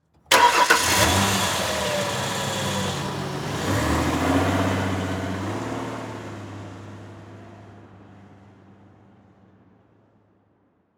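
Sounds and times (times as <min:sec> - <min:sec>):
Ford Ranger truck starting and driving off quickly: 0:00.2 - 0:08.4.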